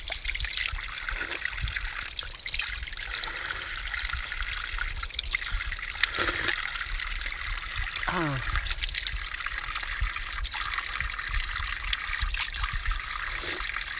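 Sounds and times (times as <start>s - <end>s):
water trickling from a tap: 0.0s - 13.9s.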